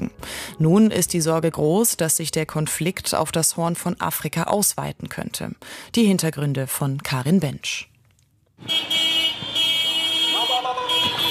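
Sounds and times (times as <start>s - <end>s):
speech: 0.6s - 7.9s, 8.6s - 9.0s
pickup truck horns blaring in Mekele Tigray: 8.6s - 11.2s
street noise in Mekele Tigray: 8.6s - 11.2s.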